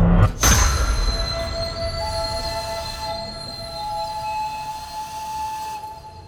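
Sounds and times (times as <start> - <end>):
train braking hard with wheels screeching on rails: 0.4 - 6.2.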